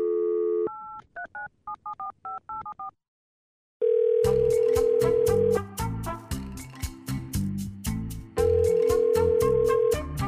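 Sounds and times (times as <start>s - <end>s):
telephone dial tone: 0.0s - 1.0s, 3.8s - 5.5s, 8.4s - 10.0s
loud rhythmic music: 4.4s - 10.2s.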